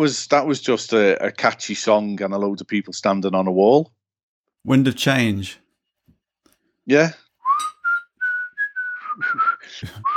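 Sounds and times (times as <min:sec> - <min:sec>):
speech: 0:00.0 - 0:04.0, 0:04.6 - 0:05.6, 0:06.9 - 0:07.2
person whistling a song melody: 0:07.4 - 0:10.1.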